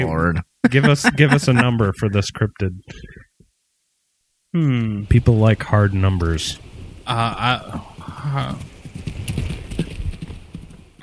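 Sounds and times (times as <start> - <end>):
laughter: 0.0 - 2.2
speech: 0.0 - 3.2, 4.5 - 8.7
small horse trotting past, hooves clip-clopping: 7.8 - 11.0.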